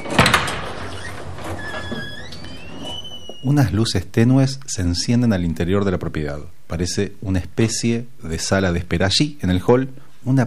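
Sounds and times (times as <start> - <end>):
door opening with clunks and a sliding whoosh: 0.0 - 3.8
speech: 3.4 - 10.4.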